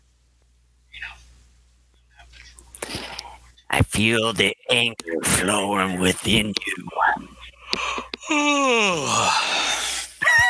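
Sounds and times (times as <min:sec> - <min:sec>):
speech: 0:04.0 - 0:09.6
person yawning with a low breathy groan: 0:07.8 - 0:10.2.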